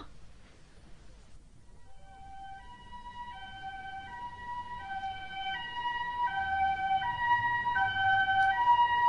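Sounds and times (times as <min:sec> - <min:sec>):
ambulance siren wailing in two-tone hi-lo pattern: 0:01.9 - 0:09.0
low rumble of traffic: 0:02.9 - 0:09.0.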